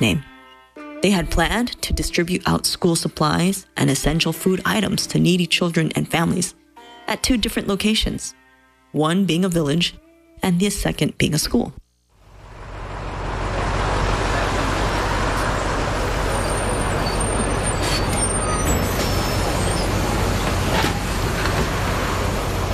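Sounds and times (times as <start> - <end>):
speech: 0.0 - 0.3, 1.0 - 11.8
bus engine rumbling: 12.2 - 22.7
road traffic noise: 12.2 - 22.7
bus air brakes hissing: 13.8 - 22.7.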